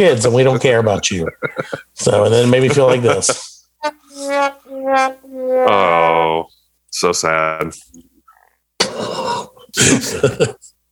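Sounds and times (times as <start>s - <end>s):
speech: 0.0s - 8.1s, 9.0s - 10.7s
loud raspy fart sound effect: 3.8s - 6.2s.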